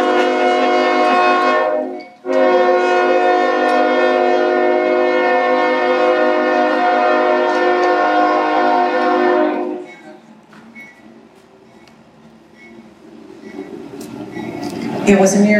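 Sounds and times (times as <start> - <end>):
passing train horn blasting: 0.0 - 10.2
passing train rolling rumble: 0.0 - 15.5
speech: 15.1 - 15.5.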